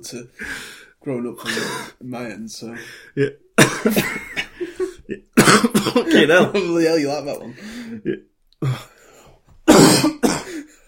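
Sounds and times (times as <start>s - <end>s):
speech: 0.0s - 8.9s
person clearing throat: 3.6s - 4.2s, 5.4s - 6.4s, 9.6s - 10.7s
person coughing: 3.6s - 4.5s, 5.4s - 6.6s, 9.6s - 10.8s.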